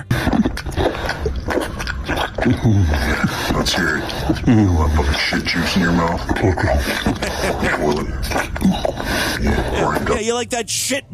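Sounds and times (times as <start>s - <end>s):
man eating and chewing wetly on a muffled camcorder recording: 0.0s - 4.5s, 8.2s - 9.7s
laughter: 2.4s - 10.2s
speech: 2.4s - 11.1s.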